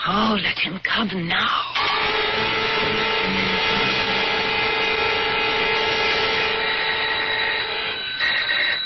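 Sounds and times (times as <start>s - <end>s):
speech: 0.1s - 4.2s
doorbell with a loud continuous buzzing rattle: 1.8s - 8.8s.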